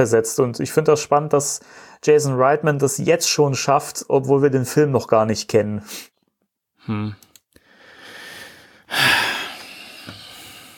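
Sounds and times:
speech: 0.0s - 6.1s, 6.8s - 7.3s
heavy breathing: 1.6s - 2.0s, 7.6s - 10.7s.

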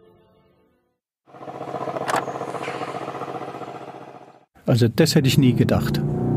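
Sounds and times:
Mercedes C63 AMG V8 engine idling with exhaust flap open: 1.3s - 4.4s
Mercedes C63 AMG V8 engine starting: 1.6s - 4.5s
speech: 4.7s - 6.2s.

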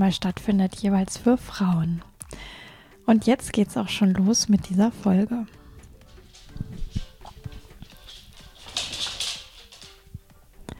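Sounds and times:
speech: 0.0s - 5.6s
dog's paws pattering on a floor: 5.9s - 10.7s.

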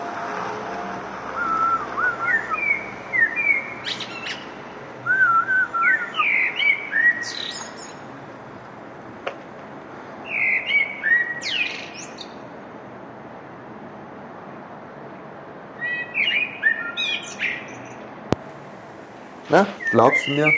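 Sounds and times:
birds chirping and whistling outdoors on a balcony in spring: 1.4s - 4.6s, 5.2s - 8.0s, 10.3s - 12.3s, 15.8s - 18.0s, 19.5s - 20.5s
hiss: 18.4s - 20.5s
speech: 19.6s - 20.5s.

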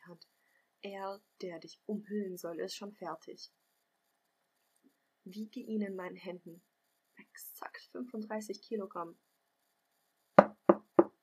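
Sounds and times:
speech: 0.2s - 3.6s, 5.3s - 6.7s, 7.4s - 9.3s
knocking on a wooden door: 10.4s - 11.2s.

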